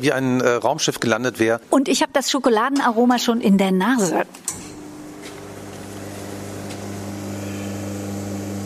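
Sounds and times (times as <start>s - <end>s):
speech: 0.0s - 4.6s
espresso machine electric pump humming while pouring espresso into cup: 4.5s - 8.6s.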